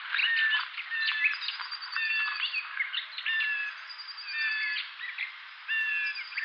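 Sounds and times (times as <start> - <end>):
Blue tit singing: 0.0 - 6.4.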